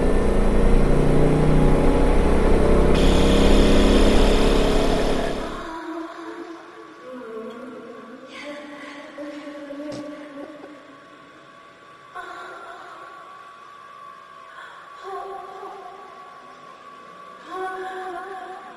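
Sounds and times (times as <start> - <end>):
Ford Bronco engine running in high gear: 0.0 - 5.8
low rumble: 0.0 - 5.8.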